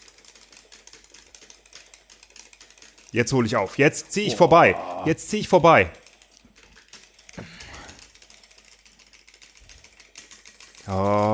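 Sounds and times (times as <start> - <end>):
plastic game controller buttons being mashed: 0.0 - 3.1, 5.4 - 11.3
speech: 3.1 - 6.0, 10.9 - 11.3.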